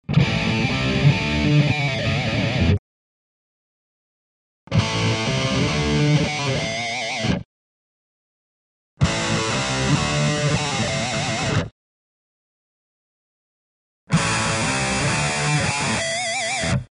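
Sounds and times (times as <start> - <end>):
high cab tuning: 0.1 - 2.8, 4.7 - 7.4, 9.0 - 11.7, 14.1 - 16.8.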